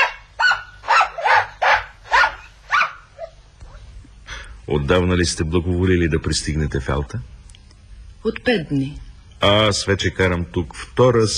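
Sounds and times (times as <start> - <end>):
small playful spitz dog yapping: 0.0 - 3.4
speech: 4.7 - 7.4, 8.2 - 11.3.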